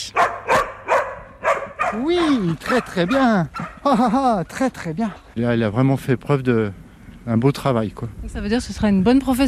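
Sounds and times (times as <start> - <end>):
female search dog barking during search training: 0.0 - 3.8
speech: 1.9 - 9.4.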